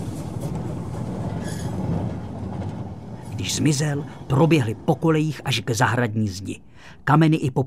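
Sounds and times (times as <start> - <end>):
passenger train rattling and roaring past: 0.0 - 6.4
faint high metallic squeal: 1.3 - 2.0
speech: 3.4 - 7.6.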